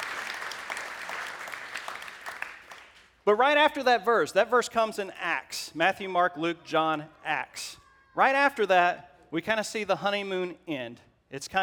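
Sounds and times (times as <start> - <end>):
crowd of many hands clapping: 0.0 - 3.1
speech: 3.2 - 11.6.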